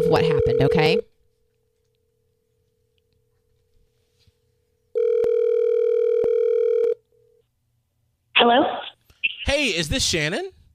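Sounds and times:
ringback tone from an outgoing phone call: 0.0 - 1.0, 5.0 - 7.0
speech: 0.1 - 1.1, 8.4 - 8.9, 9.5 - 10.6.

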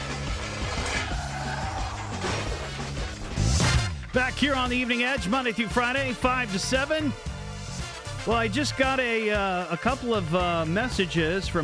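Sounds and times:
car crash: 0.0 - 4.1
speech: 4.2 - 7.3, 8.2 - 11.6.

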